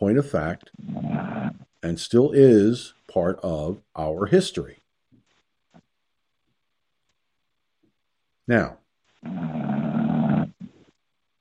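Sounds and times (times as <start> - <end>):
speech: 0.0 - 1.1, 1.8 - 4.8, 8.5 - 9.7
short soft snort: 0.8 - 1.7, 9.2 - 10.8
person snoring: 9.2 - 10.8.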